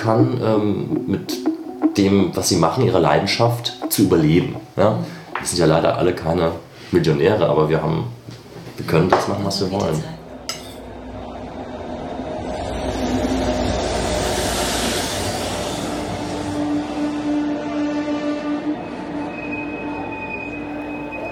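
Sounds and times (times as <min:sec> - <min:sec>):
speech: 0:00.0 - 0:01.4, 0:02.0 - 0:08.2, 0:08.8 - 0:10.2
moving train rumbling heard from inside a carriage: 0:10.9 - 0:21.2
high metallic squeal of train wheels: 0:18.5 - 0:21.2.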